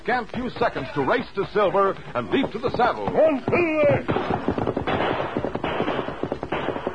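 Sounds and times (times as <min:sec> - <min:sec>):
speech: 0:00.0 - 0:05.4
rapid gunfire during a canyon shootout: 0:03.6 - 0:06.9.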